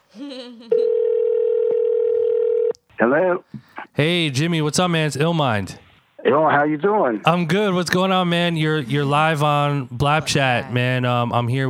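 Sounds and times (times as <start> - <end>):
speech: 0.2 - 1.1, 3.0 - 11.6
electronic phone ringing tone on an outgoing call: 0.7 - 2.7.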